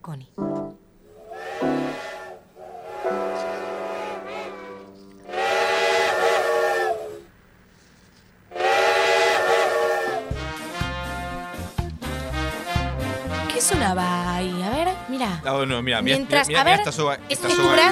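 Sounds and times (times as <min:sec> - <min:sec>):
speech: 0:00.1 - 0:00.5, 0:15.6 - 0:17.9
steam train hissing steam: 0:01.1 - 0:07.3, 0:08.5 - 0:10.4
steam train rhythmic chugging: 0:01.1 - 0:07.3, 0:08.5 - 0:15.4, 0:17.4 - 0:17.9
steam train whistle blasts: 0:01.2 - 0:07.3, 0:08.5 - 0:13.6, 0:17.4 - 0:17.9.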